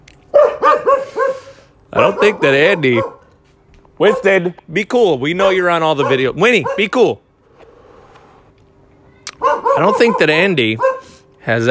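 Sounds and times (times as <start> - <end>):
dog waiting to be let inside barking: 0.3 - 3.2, 5.9 - 7.0, 9.4 - 11.2
speech: 2.0 - 3.2, 4.0 - 7.2, 9.8 - 11.6.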